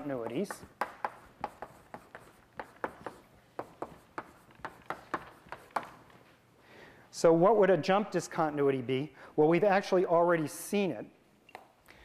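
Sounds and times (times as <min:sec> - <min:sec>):
speech: 0:00.0 - 0:00.8, 0:07.2 - 0:11.2
chalk writing on a board during a mathematics lecture: 0:00.0 - 0:06.2.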